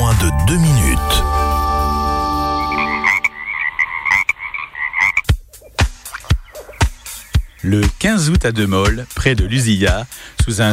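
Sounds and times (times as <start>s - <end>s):
speech: 0.1s - 1.2s, 7.7s - 10.7s
frogs croaking in a warbling trilling chorus: 2.5s - 7.7s.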